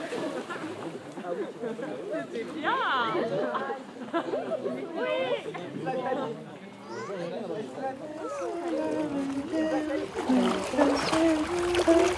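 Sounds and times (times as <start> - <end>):
people chattering: 0.0 - 12.1
speech: 1.3 - 12.1
water splashing and churning as a small boat crosses a river: 8.0 - 12.1.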